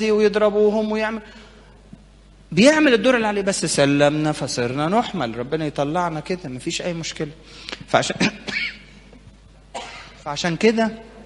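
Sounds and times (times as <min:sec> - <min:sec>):
speech: 0:00.0 - 0:01.5, 0:02.5 - 0:08.8, 0:10.2 - 0:11.1
rough raspy coughs: 0:08.2 - 0:09.0, 0:09.7 - 0:10.2.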